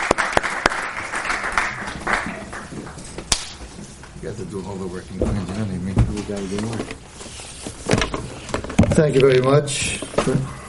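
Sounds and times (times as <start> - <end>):
audience applause: 0.0 - 3.0
sharp individual claps: 0.0 - 3.7
speech: 4.2 - 7.2, 9.0 - 10.6.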